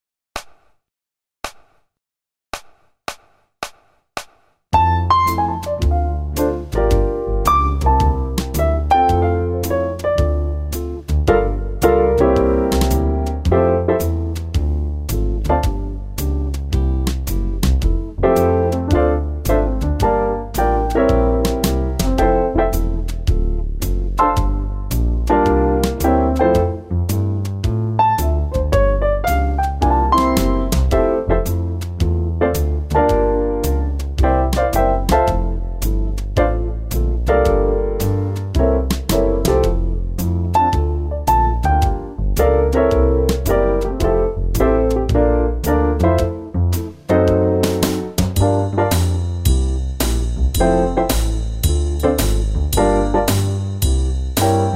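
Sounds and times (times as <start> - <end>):
jazz music playback: 4.8 - 54.7.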